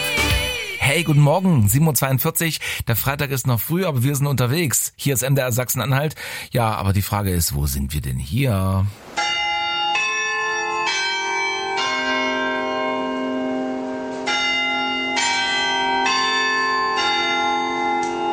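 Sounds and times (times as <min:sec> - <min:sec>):
speech: 0:01.0 - 0:09.2
church bells chiming from the Red Tower on the market square in Halle: 0:09.2 - 0:18.3.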